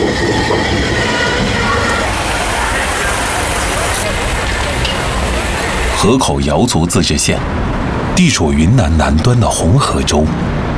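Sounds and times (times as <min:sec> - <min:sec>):
faint metallic squeals of train: 0:00.0 - 0:05.9
train rumbling across border river bridge into Hekou, Yunnan, China: 0:00.0 - 0:10.7
speech: 0:06.0 - 0:10.7.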